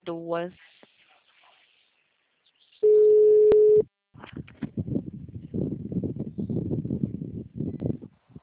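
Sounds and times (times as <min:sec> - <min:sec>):
telephone tone after a dropped call: 0:02.8 - 0:03.8.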